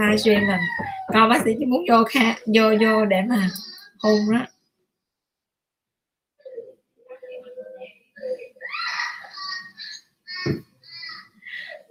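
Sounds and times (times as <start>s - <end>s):
speech: 0.0s - 4.5s
young child crying and sobbing: 8.5s - 11.3s.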